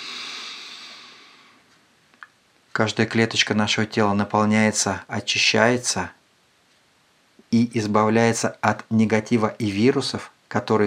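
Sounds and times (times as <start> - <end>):
deep breath drawn in during a breathing exercise: 0.0 - 1.6
speech: 2.8 - 6.2, 7.5 - 10.8.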